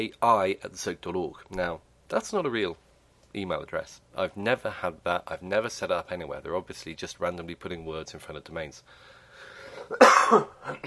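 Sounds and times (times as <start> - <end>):
speech: 0.0 - 9.1, 9.9 - 10.8
single harsh cough close to the microphone: 9.7 - 10.8.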